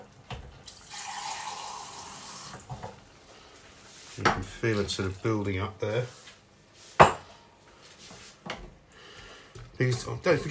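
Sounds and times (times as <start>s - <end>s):
water pouring into a cooking pot: 0.6s - 2.7s
speech: 4.3s - 6.2s, 9.8s - 10.4s.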